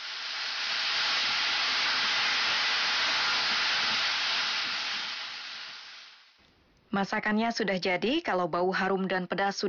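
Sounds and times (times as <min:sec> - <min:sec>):
carrots frying in a hot pan as soy sauce evaporates: 0:00.0 - 0:06.4
speech: 0:06.9 - 0:09.6.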